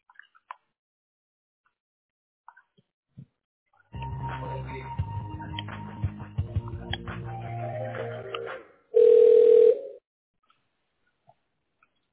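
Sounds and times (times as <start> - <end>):
telephone ring tone: 9.0 - 10.0.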